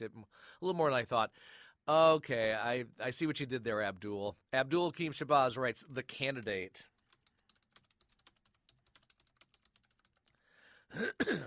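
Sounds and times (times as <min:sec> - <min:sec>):
speech: 0:00.0 - 0:06.9, 0:10.9 - 0:11.4
fingers typing on a computer keyboard: 0:06.9 - 0:10.4
person clearing throat: 0:10.9 - 0:11.4.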